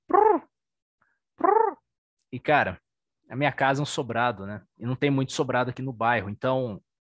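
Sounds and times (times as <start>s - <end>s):
person imitating pigeon cooing: 0.0s - 0.5s, 1.4s - 1.8s
speech: 2.4s - 6.9s.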